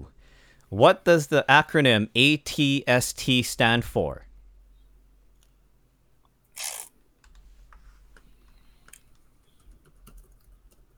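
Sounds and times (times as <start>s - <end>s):
low hum: 0.0s - 10.9s
speech: 0.7s - 4.3s
typing on a computer keyboard: 8.8s - 10.9s.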